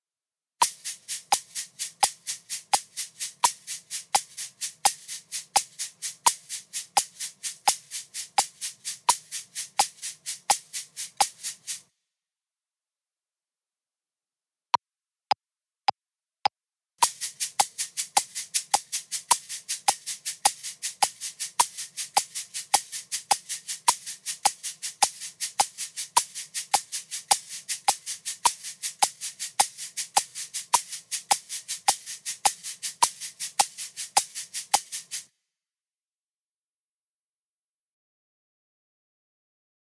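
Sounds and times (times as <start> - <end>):
shakers playing accents in twelve-eight: 0.6 - 11.9, 17.0 - 35.4.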